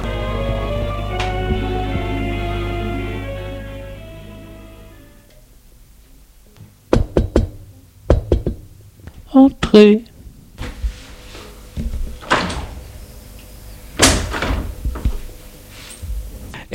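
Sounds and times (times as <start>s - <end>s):
steady droning hum: 0.0s - 16.7s
sharp raps on the door of a room: 6.9s - 8.7s
speech: 9.4s - 10.1s.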